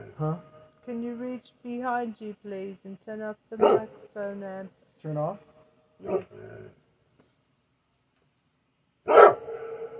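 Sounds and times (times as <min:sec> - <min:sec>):
faint steady insect-like whine: 0:00.0 - 0:09.9
speech: 0:00.2 - 0:06.9
dog barking: 0:03.6 - 0:03.9, 0:06.0 - 0:06.4, 0:09.1 - 0:09.9.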